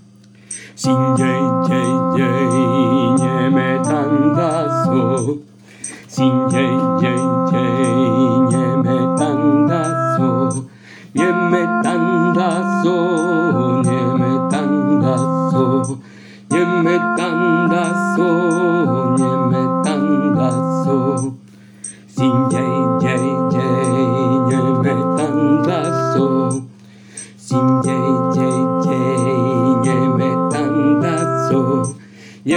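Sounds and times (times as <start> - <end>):
contralto singing: 0.8 - 5.5, 6.1 - 21.4, 22.1 - 26.7, 27.4 - 32.5.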